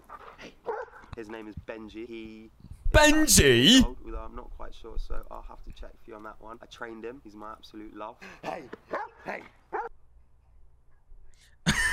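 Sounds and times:
dog barking at a man: 0.6 - 1.1, 8.9 - 9.9
speech: 1.2 - 9.8.

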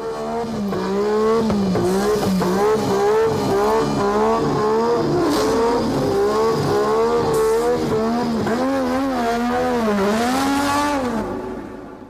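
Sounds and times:
1980s turbo Formula 1 race car engine revving through gears: 0.0 - 11.6.

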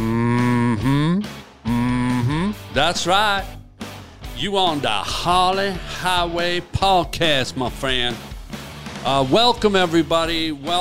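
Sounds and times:
person imitating a cow mooing: 0.0 - 2.8
speech: 2.8 - 3.6, 4.4 - 8.3, 9.0 - 10.7.

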